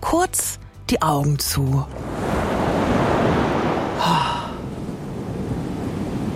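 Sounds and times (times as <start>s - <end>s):
speech: 0.1s - 2.2s
ocean surf rolling in: 1.9s - 6.3s
ocean wave cresting and breaking on the shore: 1.9s - 6.3s.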